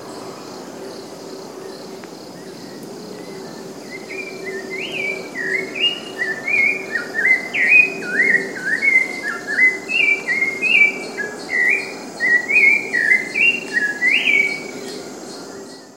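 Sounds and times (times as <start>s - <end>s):
rufous-bellied thrush singing in Cantareira, São Paulo state, Brazil: 4.0s - 14.6s.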